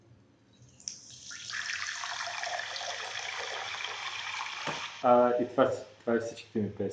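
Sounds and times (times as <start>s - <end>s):
water pouring into a glass: 0.8s - 5.1s
speech: 5.0s - 6.9s.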